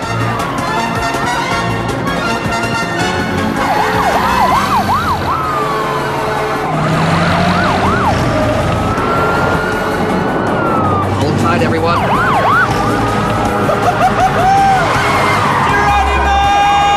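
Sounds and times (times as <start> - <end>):
dense rumble of traffic: 0.0 - 16.9
several emergency vehicle sirens wailing and yelping: 0.0 - 16.9
laughter: 13.0 - 16.9.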